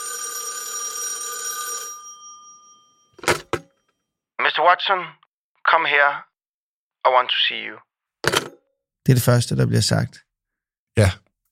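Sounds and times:
old mechanical telephone bell ringing: 0.0 - 3.4
speech: 4.6 - 6.3, 7.0 - 7.9, 9.0 - 10.2, 11.0 - 11.4.

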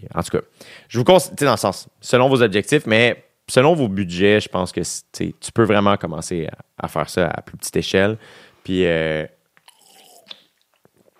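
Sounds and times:
speech: 0.1 - 9.4
person taking a small sip of water: 9.6 - 11.1.

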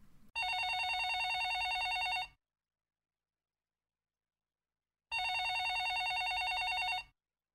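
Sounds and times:
old-style telephone bell ringing: 0.4 - 2.4, 5.1 - 7.2.

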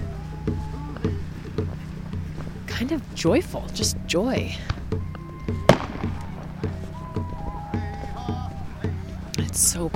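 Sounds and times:
voices singing: 0.0 - 9.9
speech: 2.8 - 5.2, 9.6 - 9.9
fireworks exploding outdoors: 5.7 - 6.4.

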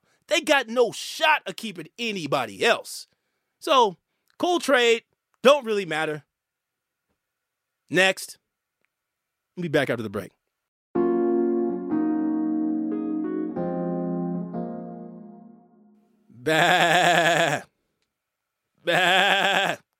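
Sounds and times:
speech: 0.4 - 6.3, 7.9 - 8.4, 9.6 - 10.4, 16.5 - 17.0
sustained musical notes: 11.0 - 16.0
goat bleating with wavering cries: 16.4 - 17.7, 18.9 - 19.8.

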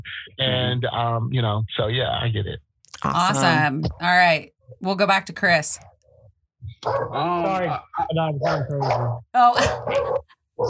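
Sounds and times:
speech: 0.0 - 5.9, 6.6 - 10.6
dogs yapping excitedly: 6.8 - 10.6.

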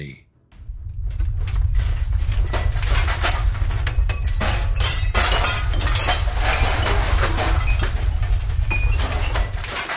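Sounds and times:
deep rumble: 0.5 - 9.8
debris crashing and shattering as pumping station walls crack after an explosion: 0.6 - 9.9
clattering fragments: 0.7 - 9.9.

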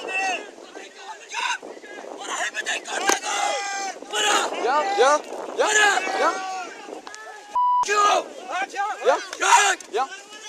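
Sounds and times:
crowd shouting and yelling on a beach: 0.0 - 10.4
wind buffeting the microphone on a beach: 0.0 - 10.4.

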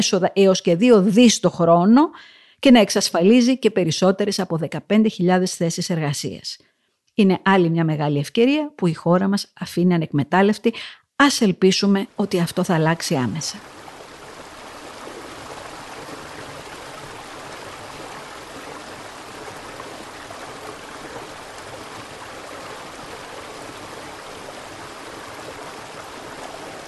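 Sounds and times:
speech: 0.0 - 13.8
stream water flowing: 12.1 - 26.8.

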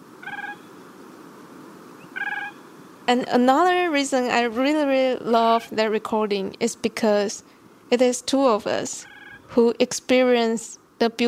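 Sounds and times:
Siberian cranes calling in flight on the Siberian tundra: 0.0 - 0.8, 2.0 - 2.9, 8.9 - 9.5
speech: 3.1 - 11.2.

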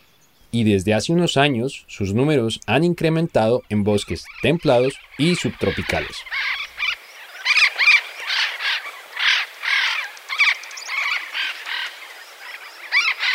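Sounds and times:
speech: 0.5 - 6.6
Andean parrot harsh raspy squawks: 3.9 - 11.9.

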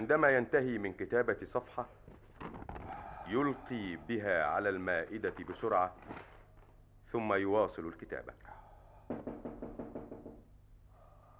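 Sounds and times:
speech: 0.0 - 2.1, 3.3 - 6.3, 7.1 - 9.4
knocking on a door: 9.1 - 10.5.

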